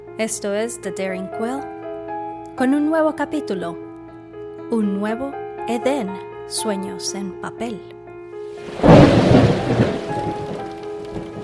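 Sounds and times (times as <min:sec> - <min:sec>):
speech: 0:00.2 - 0:01.8, 0:02.6 - 0:03.8, 0:04.7 - 0:07.9
deep roll of thunder during a dark lightning storm: 0:08.6 - 0:11.4.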